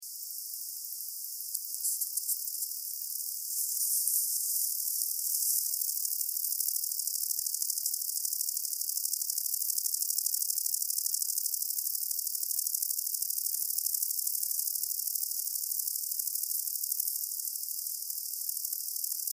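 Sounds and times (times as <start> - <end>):
Conocephalus fuscus bush-cricket chirping: 0.0 - 19.3.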